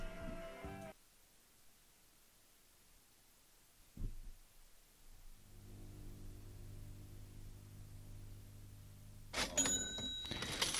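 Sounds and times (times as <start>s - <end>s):
low steady hum: 1.0s - 10.7s
cash register ringing and clattering: 9.3s - 10.7s
metallic coins jingling and dropping: 9.4s - 10.7s.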